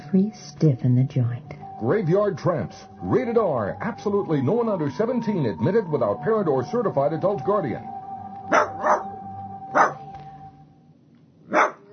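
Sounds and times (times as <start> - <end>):
faint steady hum: 0.0 - 11.9
speech: 0.1 - 8.6
mad dog barking: 8.5 - 9.1, 9.7 - 10.0, 11.5 - 11.9.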